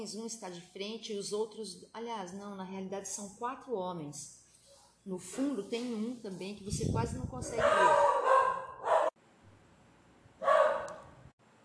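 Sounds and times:
speech: 0.0 - 4.4, 5.0 - 8.2
dog barking: 7.5 - 9.2, 10.4 - 11.1.

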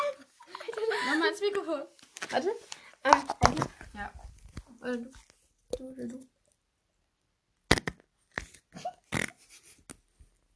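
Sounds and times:
speech: 1.3 - 4.2, 4.8 - 6.3
short blatting raspy fart noises: 7.7 - 8.0, 8.8 - 9.6.

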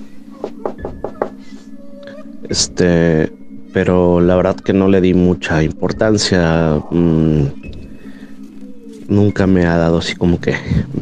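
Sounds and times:
steady low hum: 0.0 - 11.0
quick knocks on a bedroom door: 0.4 - 1.4
speech: 2.4 - 7.7, 9.1 - 11.0.

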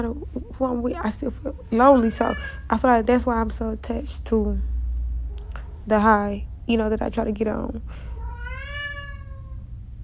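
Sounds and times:
speech: 0.0 - 4.7, 5.8 - 8.1
steady low rumble: 0.0 - 10.0
cat meowing loudly: 2.0 - 2.7, 8.1 - 9.6.

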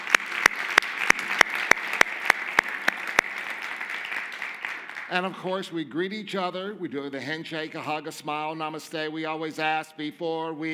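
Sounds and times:
audience applauding: 0.0 - 5.4
speech: 5.1 - 10.7.

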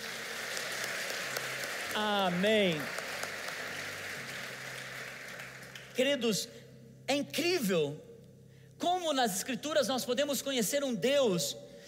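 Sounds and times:
congregation applauding: 0.0 - 6.2
speech: 2.0 - 3.0, 6.0 - 8.1, 8.8 - 11.7.

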